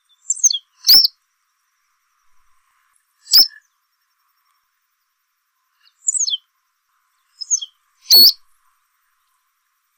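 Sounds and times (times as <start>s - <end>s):
capuchino de boina gris bird calling: 0.0s - 1.2s, 3.2s - 3.6s, 5.8s - 6.4s, 7.3s - 8.4s.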